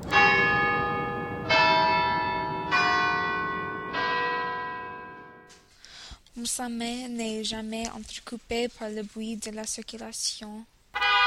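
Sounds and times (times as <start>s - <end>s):
church bells ringing in the morning: 0.0s - 5.7s, 11.0s - 11.2s
speech: 6.4s - 10.7s.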